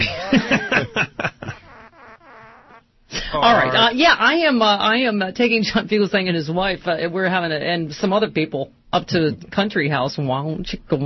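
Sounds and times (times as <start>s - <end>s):
buzzy sputtering fart sound effect from an effects box: 1.4s - 2.9s
speech: 3.3s - 11.0s.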